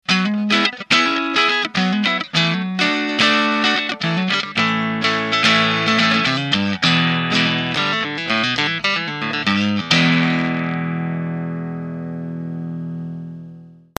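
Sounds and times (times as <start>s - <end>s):
boost drive overdriven guitar: 0.0s - 13.9s.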